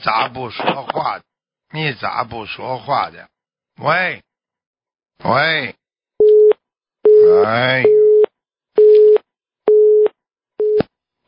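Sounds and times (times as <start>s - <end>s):
speech: 0.0s - 4.3s, 5.2s - 5.8s, 7.3s - 8.0s
phone busy tone after a dropped call: 6.2s - 10.8s.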